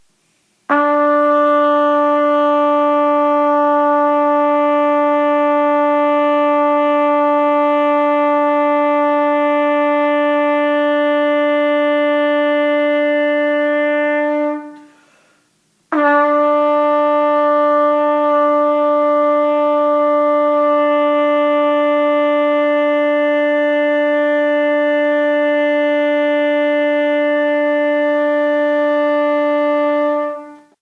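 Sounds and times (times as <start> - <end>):
trumpet playing long tones on low E: 0.7 - 15.2, 15.8 - 30.8.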